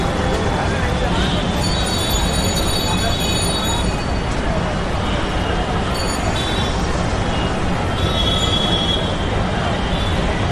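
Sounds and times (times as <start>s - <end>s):
low rumble of big city traffic or rail: 0.0s - 10.4s.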